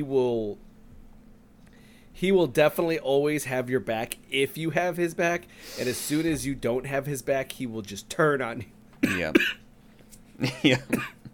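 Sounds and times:
speech: 0:00.0 - 0:00.7, 0:02.2 - 0:09.6, 0:10.4 - 0:11.2
raspy coughs with throaty rattle: 0:09.0 - 0:09.6, 0:10.5 - 0:11.3.

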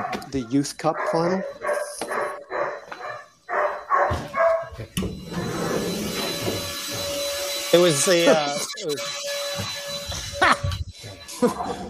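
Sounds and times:
dog barking: 0:00.0 - 0:04.8
speech: 0:00.3 - 0:01.6, 0:07.7 - 0:09.7
vacuum cleaner drone: 0:05.0 - 0:11.8
laughter: 0:11.2 - 0:11.8.

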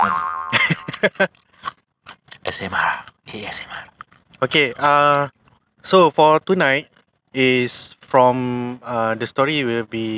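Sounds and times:
speech: 0:00.0 - 0:00.2, 0:01.0 - 0:01.4, 0:04.4 - 0:10.1
laughter: 0:00.5 - 0:01.3
person chewing peanuts: 0:01.2 - 0:05.7.

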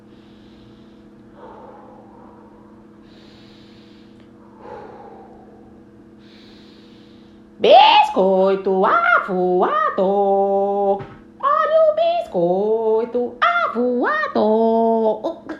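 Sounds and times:
slow deep breathing by a person trying to relax: 0:00.0 - 0:07.5
steady low hum: 0:00.0 - 0:15.5
speech: 0:07.6 - 0:11.1, 0:12.4 - 0:14.5.

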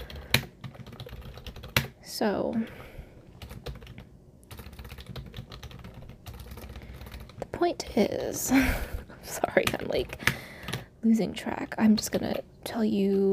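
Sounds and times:
clicking of keys on a computer keyboard: 0:00.0 - 0:01.9, 0:03.4 - 0:07.5, 0:09.4 - 0:10.9
speech: 0:02.1 - 0:02.9, 0:07.6 - 0:10.4, 0:11.0 - 0:13.3.

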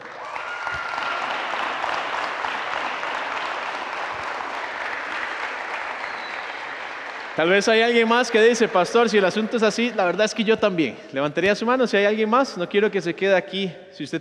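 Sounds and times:
room full of people applauding: 0:00.0 - 0:10.2
speech: 0:07.4 - 0:14.1.

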